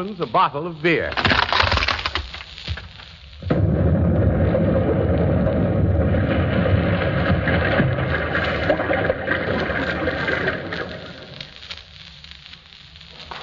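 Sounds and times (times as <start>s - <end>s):
speech: 0.0s - 1.8s
explosion sound-effect record rumbling with crackling debris: 3.4s - 10.8s.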